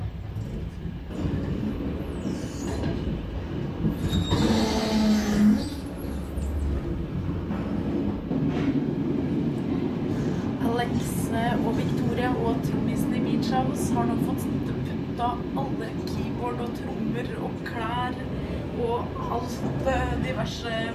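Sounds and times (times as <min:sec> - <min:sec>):
train to Oslo rumbling: 0:00.0 - 0:20.9.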